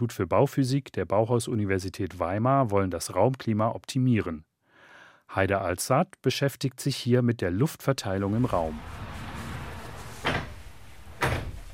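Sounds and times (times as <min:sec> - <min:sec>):
speech: 0:00.0 - 0:04.5, 0:05.3 - 0:09.0
sliding door opened in a building-physics institute lab: 0:08.1 - 0:11.7
steady hiss: 0:08.1 - 0:11.7.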